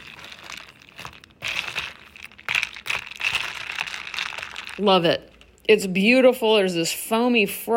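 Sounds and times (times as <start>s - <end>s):
ice cubes clinking in a cup of iced coffee: 0.0s - 5.8s
soft crinkly shuffling: 0.0s - 5.8s
speech: 4.8s - 7.7s.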